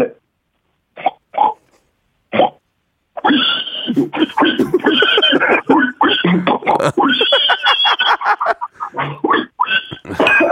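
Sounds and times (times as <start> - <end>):
person imitating a pig oinking: 3.2 - 10.5
speech: 4.0 - 4.7
laughter: 4.0 - 9.0, 9.9 - 10.5.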